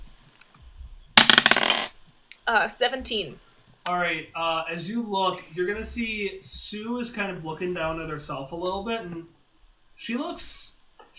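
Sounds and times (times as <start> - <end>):
dice clattering across a hard surface: 1.2 - 1.9
speech: 2.5 - 9.4, 10.0 - 11.1.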